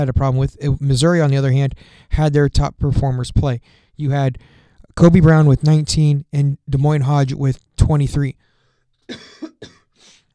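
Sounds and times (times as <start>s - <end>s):
speech: 0.0s - 8.5s, 9.1s - 9.8s
man coughing with a harsh burst: 9.1s - 10.2s.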